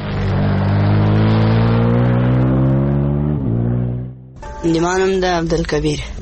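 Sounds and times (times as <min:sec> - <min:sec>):
motorcycle engine revving hard: 0:00.0 - 0:04.4
speech: 0:04.6 - 0:06.2.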